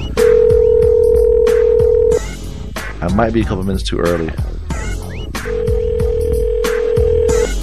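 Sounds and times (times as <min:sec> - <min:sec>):
sustained telephone tone while a call is being dialed: 0:00.2 - 0:02.2, 0:05.5 - 0:07.5
speech: 0:03.0 - 0:04.5.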